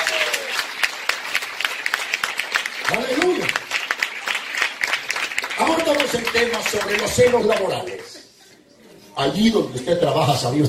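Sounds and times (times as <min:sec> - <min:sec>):
church congregation applauding during a sermon: 0:00.0 - 0:08.2
speech: 0:06.0 - 0:08.1, 0:09.2 - 0:10.6.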